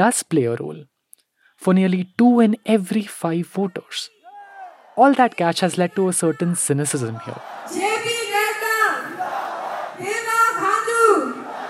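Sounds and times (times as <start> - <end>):
speech: 0.0 - 0.9, 1.6 - 4.2, 5.0 - 8.2
supporters cheering at an outdoor political rally: 4.2 - 11.6.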